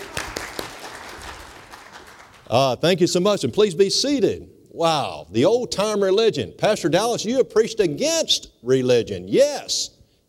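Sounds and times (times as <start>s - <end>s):
audience applause: 0.0s - 2.6s
speech: 2.5s - 10.0s.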